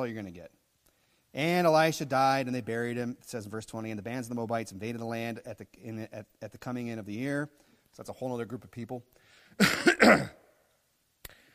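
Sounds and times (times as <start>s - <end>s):
speech: 0.0s - 0.6s, 1.3s - 10.4s
person coughing during an evening scripture reading: 9.6s - 10.5s.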